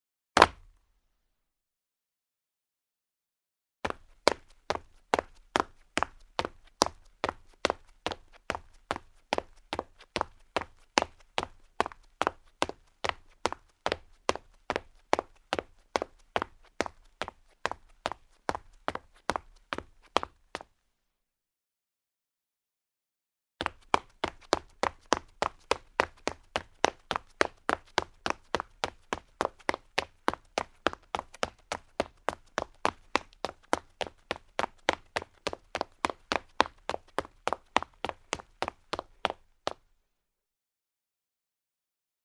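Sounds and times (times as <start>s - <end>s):
fast footsteps then running: 3.9s - 20.7s, 23.6s - 39.8s.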